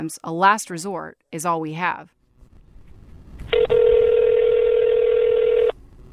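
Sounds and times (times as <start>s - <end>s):
speech: 0.0s - 2.2s
faint noise: 0.0s - 6.1s
telephone dialing: 3.5s - 5.7s.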